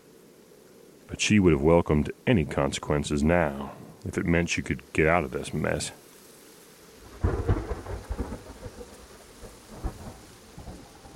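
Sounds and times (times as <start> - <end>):
steady hiss of falling rain in a summer thunderstorm: 0.0 - 11.1
speech: 1.1 - 6.0
loud thunderclap rumbling in a summer thunderstorm: 7.1 - 8.8.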